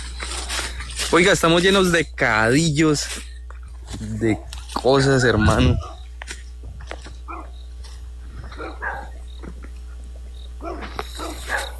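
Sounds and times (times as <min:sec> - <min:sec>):
low hum: 0:00.0 - 0:11.7
speech: 0:01.1 - 0:03.3, 0:04.0 - 0:06.0
dogs guarding a storehouse barking and growling: 0:04.2 - 0:06.1, 0:06.8 - 0:10.0, 0:10.6 - 0:11.7.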